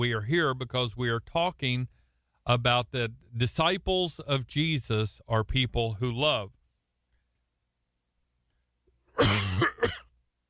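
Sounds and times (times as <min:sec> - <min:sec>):
speech: 0:00.0 - 0:06.6, 0:09.2 - 0:09.7
raspy cough: 0:09.1 - 0:10.2.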